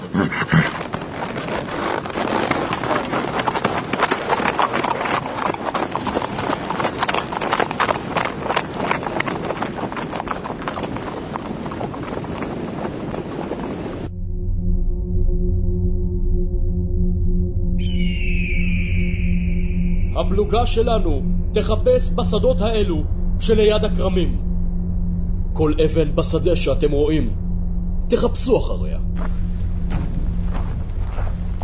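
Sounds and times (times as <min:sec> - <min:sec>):
horse hooves clip-clopping: 0:00.3 - 0:14.1, 0:29.2 - 0:31.6
steady droning tone: 0:14.1 - 0:31.6
speech: 0:20.4 - 0:24.4, 0:25.6 - 0:27.4, 0:28.1 - 0:29.3.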